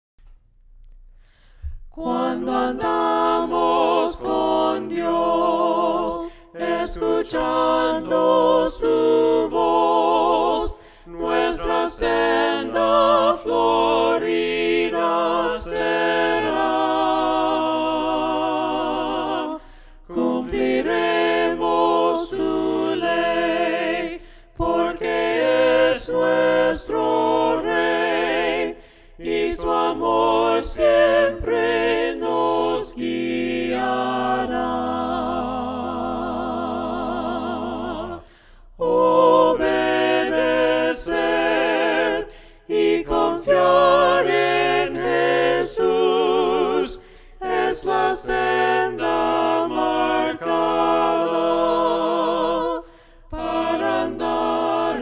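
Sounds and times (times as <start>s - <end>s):
voices singing a cappella hymn: 1.3s - 54.9s.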